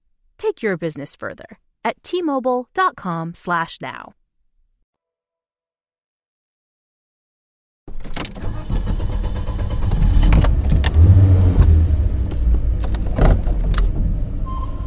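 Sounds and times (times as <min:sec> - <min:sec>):
speech: 0:00.4 - 0:04.2
clicks and clunks of getting into a black SUV: 0:07.9 - 0:08.6, 0:09.8 - 0:14.1
SUV engine rumble: 0:08.4 - 0:14.8.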